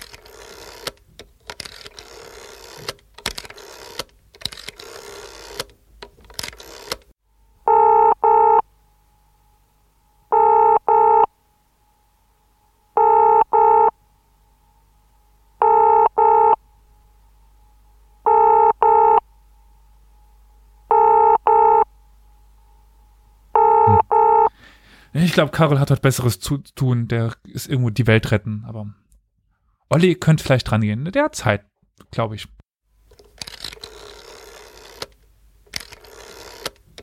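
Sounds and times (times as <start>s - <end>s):
double-pulse ringing tones of an outgoing telephone call: 7.6s - 8.7s, 10.3s - 11.3s, 13.0s - 14.0s, 15.6s - 16.6s, 18.2s - 19.2s, 20.9s - 21.9s, 23.6s - 24.5s
speech: 25.3s - 29.0s, 29.9s - 32.6s.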